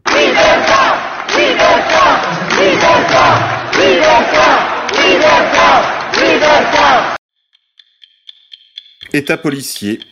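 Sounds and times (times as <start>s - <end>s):
opposition deputies in parliament chanting in unison: 0.0s - 7.2s
speech: 9.2s - 10.1s.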